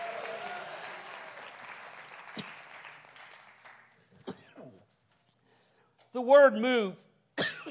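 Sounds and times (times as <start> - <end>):
audience clapping: 0.0 - 4.2
speech: 6.2 - 7.1.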